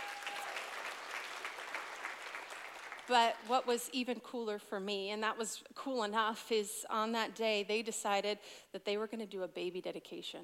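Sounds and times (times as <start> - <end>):
crowd clapping: 0.0 - 3.7
speech: 3.1 - 10.4.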